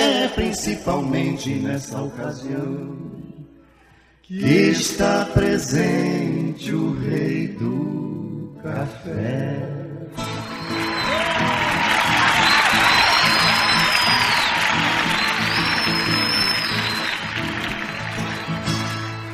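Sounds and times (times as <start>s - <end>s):
speech: 0.3s - 3.3s, 4.3s - 10.4s
shrill whistles from a crowd: 10.2s - 19.2s
large crowd clapping and cheering: 10.2s - 19.3s.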